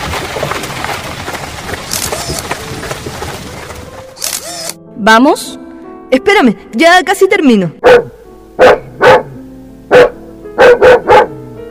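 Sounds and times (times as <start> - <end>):
speech: 5.0 - 8.8
large dog barking in loud deep woofs: 7.8 - 11.4.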